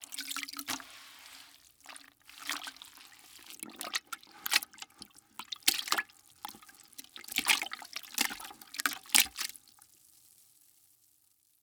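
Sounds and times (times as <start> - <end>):
wet mop sloshing around in mop bucket: 0.0 - 9.5.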